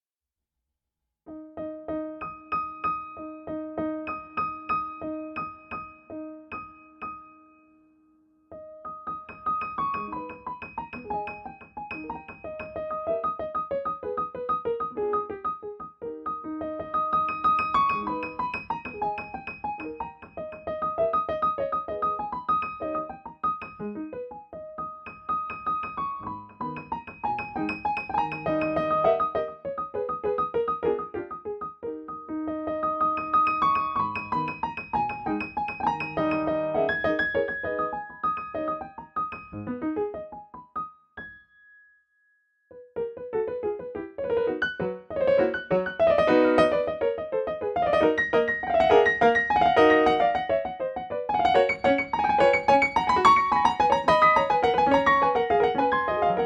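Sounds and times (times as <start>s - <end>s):
Steinway D concert grand piano: 1.3s - 41.8s, 42.7s - 56.4s.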